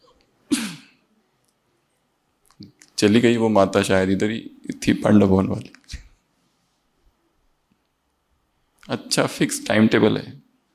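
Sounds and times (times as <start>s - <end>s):
person sneezing: 0.0s - 1.0s
speech: 2.6s - 6.0s, 8.9s - 10.4s.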